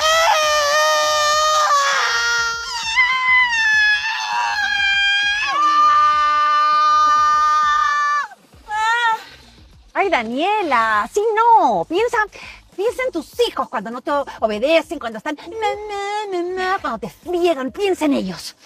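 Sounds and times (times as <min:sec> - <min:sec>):
several women screaming together in high-pitched voices: 0:00.0 - 0:09.3
speech: 0:10.1 - 0:18.6.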